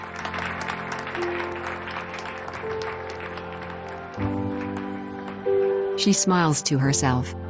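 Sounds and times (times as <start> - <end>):
crowd clapping: 0.0 - 5.7
speech: 1.2 - 1.8, 6.0 - 7.4.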